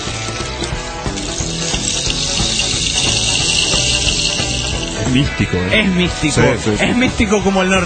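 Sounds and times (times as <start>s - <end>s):
seeds cascading inside a rainstick: 0.0s - 5.3s
speech: 5.1s - 7.8s.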